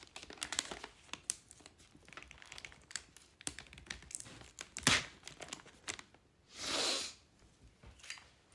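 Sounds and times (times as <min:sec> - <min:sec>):
crinkles, taps and rustles of handling while wrapping a Christmas gift: 0:00.0 - 0:06.2
sticky tape pulled off and torn for gift wrapping: 0:04.7 - 0:05.2.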